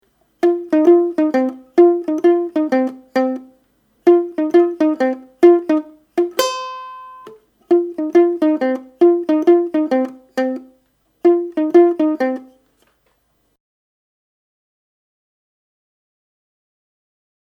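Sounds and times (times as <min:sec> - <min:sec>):
ukulele: 0:00.0 - 0:12.6
bassoon riff: 0:00.4 - 0:12.6.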